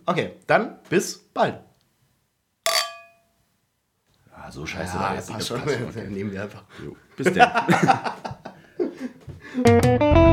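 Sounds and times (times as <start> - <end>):
speech: 0.1 - 1.7, 4.4 - 8.3, 9.6 - 10.3
glasses clinking in a toast: 2.7 - 3.3
laughter: 7.2 - 9.3.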